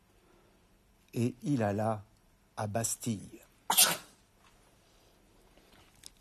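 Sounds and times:
speech: 1.1s - 4.0s
sneeze: 3.7s - 4.2s.

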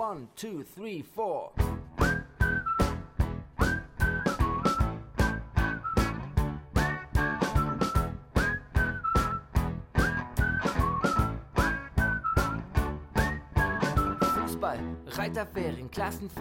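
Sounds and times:
speech: 0.0s - 2.2s, 15.3s - 16.4s
steady drum beat with backing music: 1.6s - 14.7s
bright cheerful whistled jingle melody: 1.7s - 14.8s.

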